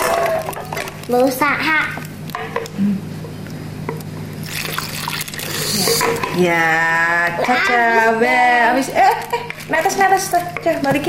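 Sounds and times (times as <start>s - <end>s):
speech: 1.1s - 3.2s, 6.0s - 11.0s
liquid poured into a container: 4.4s - 6.7s.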